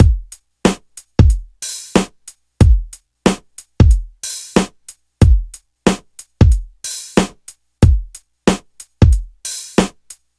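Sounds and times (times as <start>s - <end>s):
92 bpm breakbeat in F sharp: 0.0s - 10.2s.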